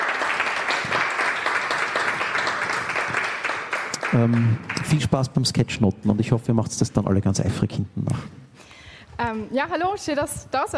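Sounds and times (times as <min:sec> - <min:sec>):
audience applause at a workshop: 0:00.0 - 0:05.5
speech: 0:04.1 - 0:08.4, 0:09.2 - 0:10.7.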